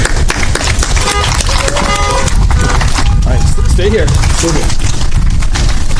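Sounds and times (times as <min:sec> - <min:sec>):
people clapping in outdoor crowd: 0:00.0 - 0:05.8
several car horns honking in applause: 0:01.0 - 0:03.8.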